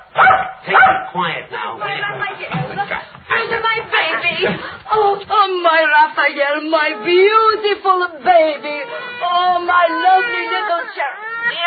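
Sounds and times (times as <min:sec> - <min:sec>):
dog barking: 0:00.0 - 0:01.2
overlapping voices and chatter: 0:00.0 - 0:11.6
speech: 0:01.0 - 0:03.1, 0:04.3 - 0:11.6.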